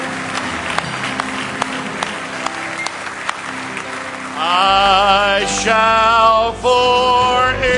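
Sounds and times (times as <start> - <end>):
crowd applauding: 0.0 - 6.0
speech: 5.4 - 7.6.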